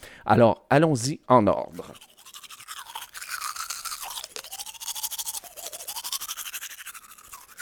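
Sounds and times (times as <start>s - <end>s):
speech: 0.2s - 2.1s
toothbrush scrubbing teeth: 1.7s - 7.6s.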